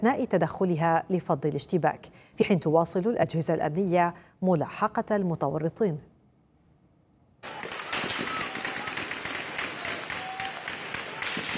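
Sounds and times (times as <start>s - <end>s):
speech: 0.0s - 6.1s
heavy gunfire at night during an armed clash in a town: 7.4s - 11.5s.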